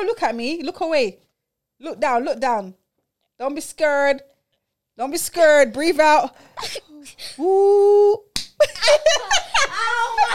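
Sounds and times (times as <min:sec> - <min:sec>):
speech: 0:00.0 - 0:01.2, 0:01.8 - 0:02.8, 0:03.4 - 0:04.3, 0:05.0 - 0:10.3
hand slapping someone's neck as a game forfeit: 0:08.3 - 0:08.6
bursts of laughter: 0:08.6 - 0:10.3
excited voices: 0:09.0 - 0:10.3.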